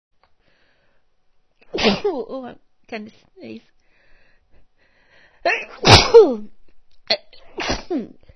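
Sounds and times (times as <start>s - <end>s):
person sneezing: 1.6s - 2.2s, 5.5s - 6.5s, 7.4s - 8.2s
speech: 1.8s - 3.8s, 5.4s - 7.2s, 7.9s - 8.2s.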